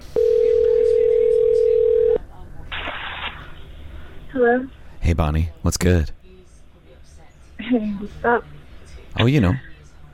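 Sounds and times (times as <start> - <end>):
telephone dial tone humming: 0.2 - 2.2
speech: 4.4 - 6.2, 7.7 - 8.6, 9.2 - 9.7.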